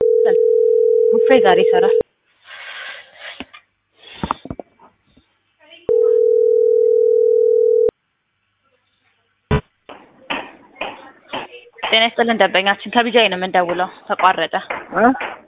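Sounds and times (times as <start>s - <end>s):
telephone dial tone after a dropped call: 0.0s - 2.0s, 5.9s - 7.9s
speech: 1.3s - 2.0s, 12.0s - 15.4s.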